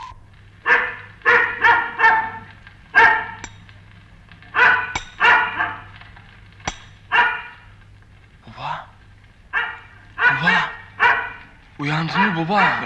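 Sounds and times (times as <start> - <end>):
dog barking loudly and sharply: 0.6 - 3.5, 4.5 - 6.0, 6.8 - 7.7, 9.5 - 12.8.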